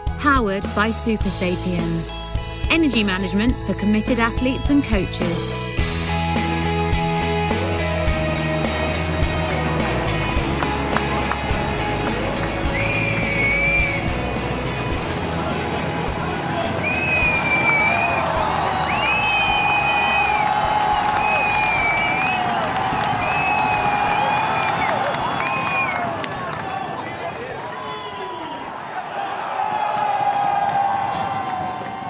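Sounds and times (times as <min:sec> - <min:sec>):
speech: 0:00.2 - 0:05.6
enthusiastic crowd cheering at cycling World Championships fan zone in Bruges: 0:06.3 - 0:32.0
shrill whistle-like tones: 0:12.7 - 0:14.1, 0:16.6 - 0:26.1.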